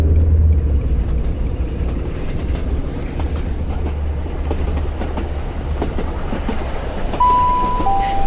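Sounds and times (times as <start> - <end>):
train rumbling along the rails: 0.0 - 8.2
brief tonal squeal or whistle: 7.2 - 8.2.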